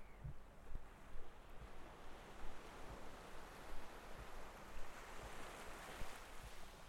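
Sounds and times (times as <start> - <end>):
gentle waves lapping on a beach: 0.0 - 6.8.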